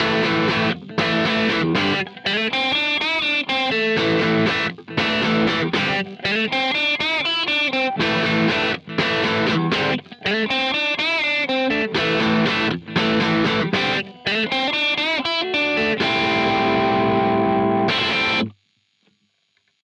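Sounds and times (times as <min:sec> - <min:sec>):
electric guitar through modded Plexi amplifier: 0:00.0 - 0:18.6.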